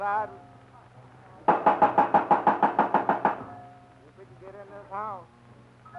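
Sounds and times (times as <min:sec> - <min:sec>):
speech: 0:00.0 - 0:00.6
knocking on the door of a house: 0:01.5 - 0:03.5.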